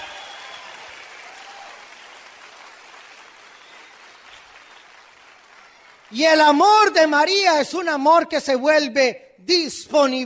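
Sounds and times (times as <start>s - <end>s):
congregation applauding: 0.0s - 7.2s
speech: 6.1s - 10.2s.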